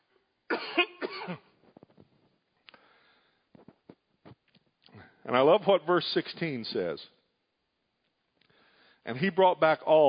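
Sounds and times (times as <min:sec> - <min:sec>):
person coughing from a tickling throat during a church sermon: 0:00.5 - 0:01.5
speech: 0:05.3 - 0:07.2, 0:09.1 - 0:10.0.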